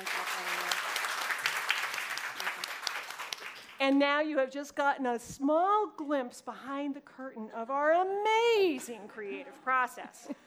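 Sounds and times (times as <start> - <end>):
crowd applauding: 0.0 - 3.8
speech: 3.8 - 10.4.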